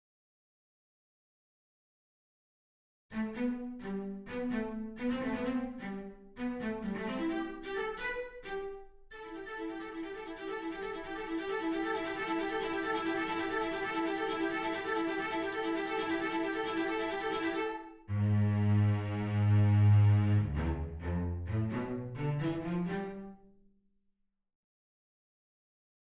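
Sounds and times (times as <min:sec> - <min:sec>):
cellos playing: 0:03.2 - 0:23.4.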